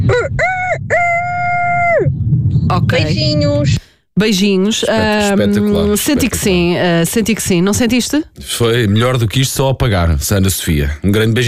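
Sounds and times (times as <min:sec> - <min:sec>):
person imitating a rooster crowing with the voice: 0:00.0 - 0:02.1
speech: 0:02.9 - 0:11.4.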